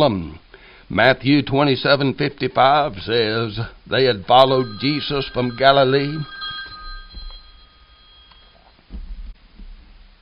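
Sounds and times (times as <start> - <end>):
speech: 0.0 - 6.4
room noise: 2.4 - 9.3
telephone ringing with electronic tone: 4.2 - 8.8.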